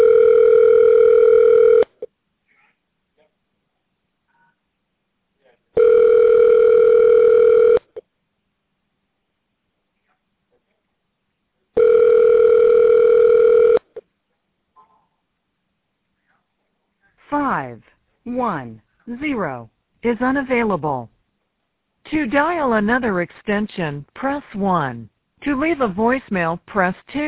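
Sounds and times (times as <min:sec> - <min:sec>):
telephone ringback tone while a call is transferred: 0:00.0 - 0:01.9, 0:05.8 - 0:07.8, 0:11.8 - 0:13.9
speech: 0:18.6 - 0:21.2, 0:22.0 - 0:27.2.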